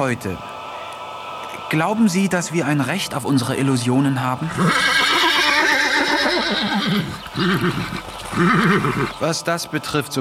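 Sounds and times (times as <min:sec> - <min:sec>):
speech: 0:00.0 - 0:00.5, 0:01.7 - 0:05.2, 0:06.4 - 0:10.2
human voice imitating a horse neighing: 0:04.5 - 0:09.1.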